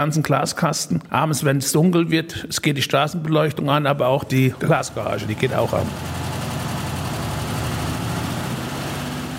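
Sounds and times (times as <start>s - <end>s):
speech: 0.0s - 6.3s
engine of the world's first omnibus idling: 4.4s - 9.3s.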